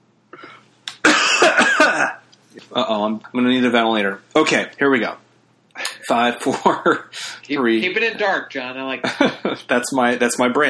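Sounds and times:
person coughing: 0.4s - 2.2s
speech: 2.8s - 5.2s, 6.1s - 10.6s.

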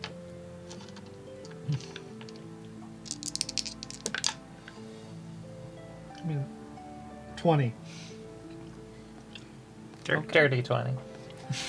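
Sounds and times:
percentile dice clattering across a tabletop: 0.0s - 2.5s, 3.1s - 4.4s
low steady tonal background: 0.0s - 11.6s
speech: 7.4s - 7.8s, 10.1s - 11.6s.

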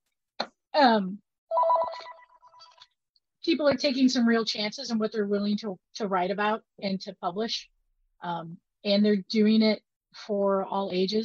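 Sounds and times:
speech: 0.8s - 1.2s, 3.4s - 11.2s
work desk telephone ringing with electronic warbling trill: 1.5s - 2.7s.

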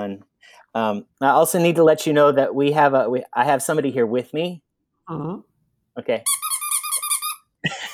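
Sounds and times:
speech: 0.0s - 6.4s, 7.6s - 7.8s
squeaky toy monkey squeaking: 6.2s - 7.6s.

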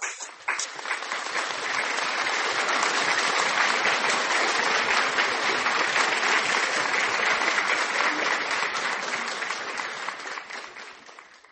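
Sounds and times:
audience applauding: 0.0s - 11.5s.

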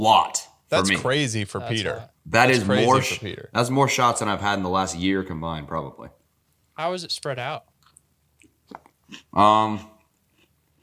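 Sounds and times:
speech: 0.0s - 6.2s, 6.8s - 7.7s, 8.7s - 9.9s
man chewing food: 7.8s - 9.4s, 10.0s - 10.8s.

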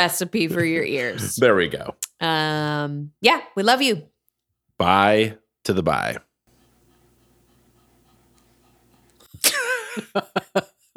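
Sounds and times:
speech: 0.0s - 4.1s, 4.8s - 6.3s, 9.4s - 10.9s
dog panting: 6.5s - 9.3s
laughter: 9.2s - 10.9s.

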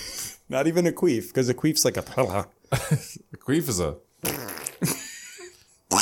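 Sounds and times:
speech: 0.5s - 5.0s
high-pitched squeaky fart-like noises: 4.2s - 4.8s.

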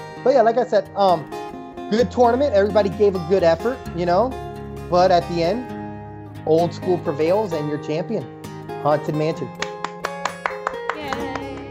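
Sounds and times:
speech: 0.2s - 5.7s, 6.4s - 9.6s
sharp claps: 9.5s - 11.6s.

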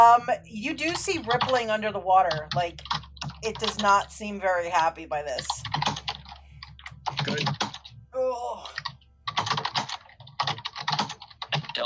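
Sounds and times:
speech: 0.0s - 5.7s
typing on a computer keyboard: 2.3s - 3.9s, 5.4s - 7.9s, 8.8s - 11.8s.

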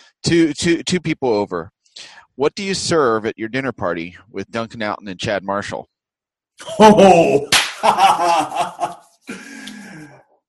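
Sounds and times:
speech: 0.2s - 5.9s, 6.6s - 9.5s
hand clap at a talk-show microphone: 7.5s - 8.0s
chuckling laughter: 7.8s - 9.1s.

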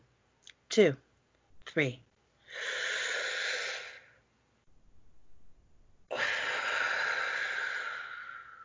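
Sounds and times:
speech: 0.8s - 1.0s, 1.7s - 2.8s
deep breath in and out in a guided breathing exercise: 2.4s - 4.3s, 6.1s - 8.6s.

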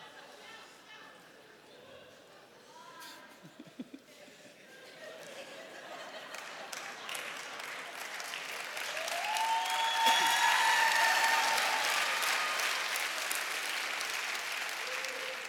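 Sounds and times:
laughter: 3.3s - 8.0s
large audience applauding: 6.3s - 15.4s
whistles and cheers from an audience: 8.8s - 13.0s.

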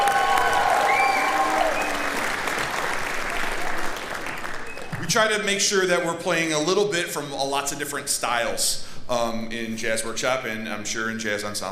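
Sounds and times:
faint cheers and whistles: 0.0s - 2.4s
crowd applauding jazz workshop band players: 0.0s - 5.0s
speech: 5.1s - 11.7s.

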